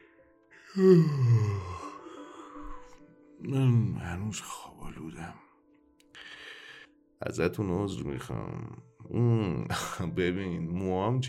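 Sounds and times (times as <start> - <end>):
person yawning, acted out as a performance: 0.6 - 2.5
speech: 0.7 - 1.4, 3.4 - 5.5, 7.2 - 11.2.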